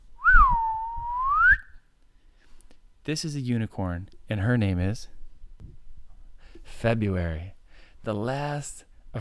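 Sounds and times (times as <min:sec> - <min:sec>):
person whistling to call an animal: 0:00.2 - 0:01.8
speech: 0:03.1 - 0:05.2, 0:06.7 - 0:09.1.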